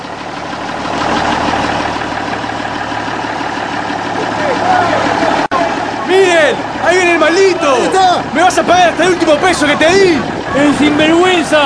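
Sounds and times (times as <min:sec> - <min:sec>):
old automobile engine rumbling and idling: 0:00.0 - 0:11.6
indistinct voices: 0:03.0 - 0:11.6
speech: 0:08.0 - 0:11.6.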